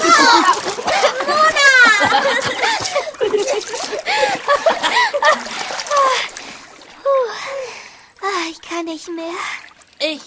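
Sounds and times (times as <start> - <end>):
laughter: 0.0 - 6.1
children's excited squeals: 0.0 - 6.2
water splashing as people play and swim: 0.0 - 10.2
speech: 8.9 - 10.2.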